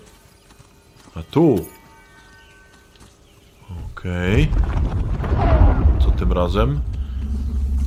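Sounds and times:
speech: 0:01.2 - 0:01.8, 0:04.0 - 0:04.9, 0:06.2 - 0:07.0
deep steady explosion rumble: 0:04.3 - 0:07.8.

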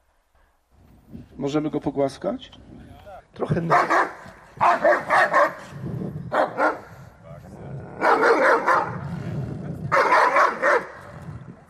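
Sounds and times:
speech: 0:01.4 - 0:02.8, 0:03.4 - 0:05.4
aggressive dog barking harshly after being surprised: 0:03.6 - 0:06.9, 0:08.0 - 0:09.0, 0:09.9 - 0:11.1.

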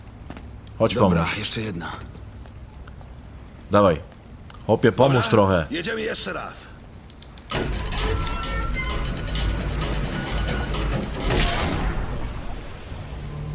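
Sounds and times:
speech: 0:00.8 - 0:02.1, 0:03.7 - 0:04.1, 0:04.7 - 0:06.8
geared mechanism turning a globe in a video game: 0:07.5 - 0:11.8.

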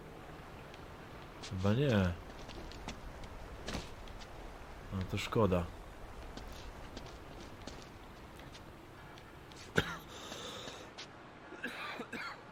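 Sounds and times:
steady low hiss: 0:00.0 - 0:12.5
speech: 0:01.5 - 0:02.2, 0:04.9 - 0:05.8
person coughing: 0:09.7 - 0:10.2.

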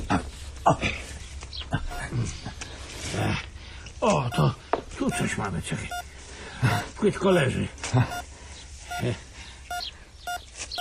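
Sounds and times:
speech: 0:00.1 - 0:01.0, 0:04.1 - 0:08.3, 0:09.0 - 0:09.3
electronic beeping while digging up a shallow buried find: 0:04.3 - 0:05.3, 0:05.9 - 0:06.1, 0:08.1 - 0:08.3, 0:08.9 - 0:10.8.

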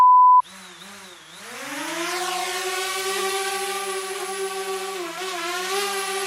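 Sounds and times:
short loud beep: 0:00.0 - 0:00.4
small buzzing drone: 0:00.4 - 0:06.2.

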